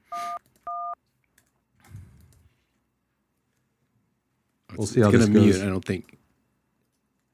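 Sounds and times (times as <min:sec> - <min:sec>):
telephone keypad dual-pitched dialing tones: 0:00.1 - 0:01.0
speech: 0:04.8 - 0:06.2.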